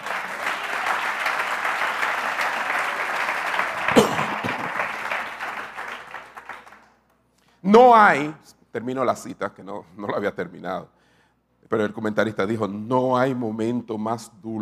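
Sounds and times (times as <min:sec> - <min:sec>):
audience applauding: 0:00.0 - 0:07.0
speech: 0:07.7 - 0:11.0, 0:11.7 - 0:14.6.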